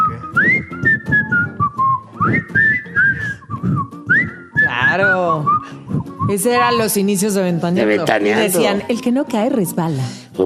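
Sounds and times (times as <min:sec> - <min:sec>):
person whistling a catchy jingle tune: 0:00.0 - 0:06.7
speech: 0:06.3 - 0:10.4.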